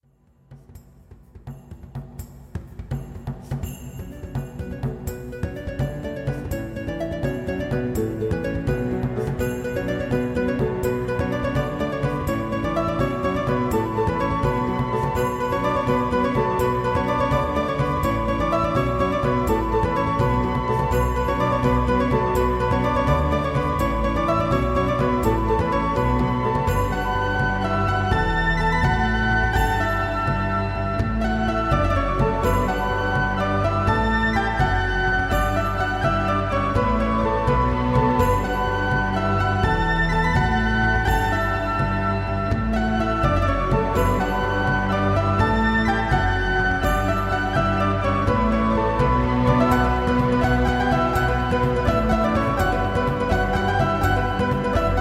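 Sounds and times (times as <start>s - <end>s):
Celtic music: 1.7s - 54.9s.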